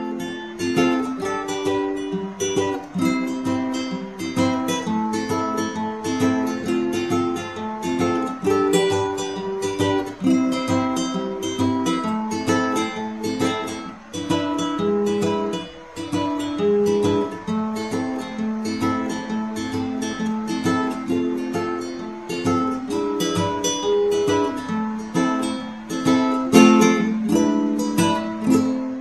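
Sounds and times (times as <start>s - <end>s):
ukulele solo: 0.0s - 29.0s.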